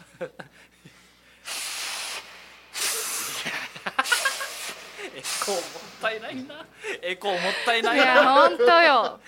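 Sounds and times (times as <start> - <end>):
speech: 0.2 - 0.7, 5.5 - 9.2
sniffs: 0.8 - 3.5, 4.1 - 6.0
nose blowing with thick mucus and phlegm: 1.4 - 6.0
laughter: 3.0 - 9.2.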